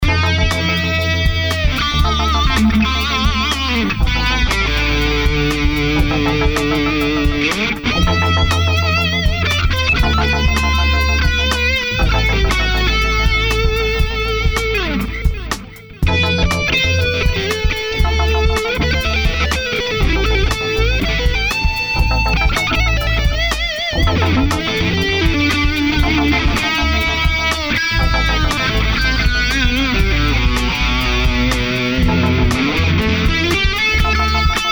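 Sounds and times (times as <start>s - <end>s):
big bass sound through an M-Audio Black Box: 0.0s - 34.7s.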